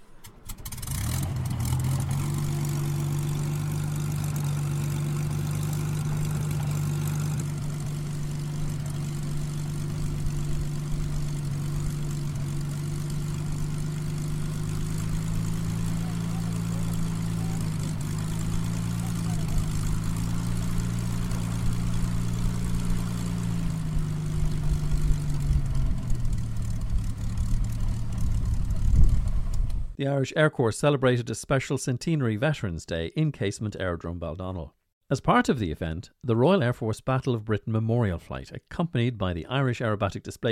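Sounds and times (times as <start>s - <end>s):
Hurricane fighter plane piston engine powering up: 0.0s - 30.0s
speech: 30.0s - 40.4s.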